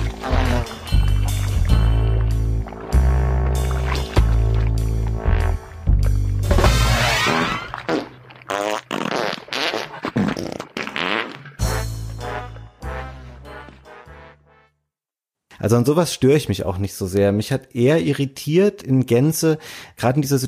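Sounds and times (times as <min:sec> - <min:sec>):
loud fart sound effects: 0:00.0 - 0:01.0, 0:05.2 - 0:12.4
piece of music: 0:00.0 - 0:08.0, 0:11.6 - 0:14.8
speech: 0:15.6 - 0:20.4.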